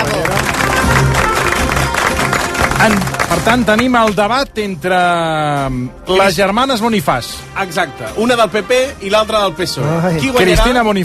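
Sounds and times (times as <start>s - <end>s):
crowd applauding: 0.0s - 4.4s
speech: 2.8s - 11.0s.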